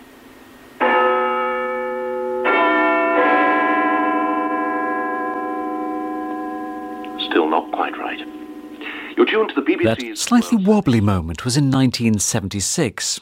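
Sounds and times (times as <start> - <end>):
clock tower bell chiming: 0.8 - 10.0
speech: 9.3 - 13.1.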